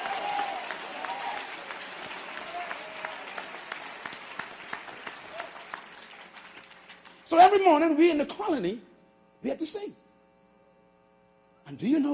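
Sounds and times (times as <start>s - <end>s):
audience clapping hands in thanks: 0.0s - 7.6s
speech: 7.3s - 10.0s, 11.7s - 12.1s.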